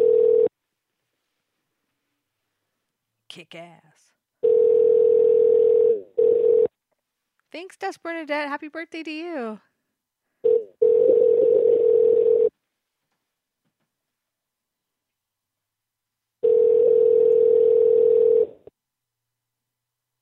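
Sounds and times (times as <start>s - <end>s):
telephone dial tone: 0.0s - 0.5s, 4.4s - 6.7s, 10.4s - 12.5s, 16.4s - 18.7s
speech: 3.3s - 4.1s, 7.5s - 9.7s.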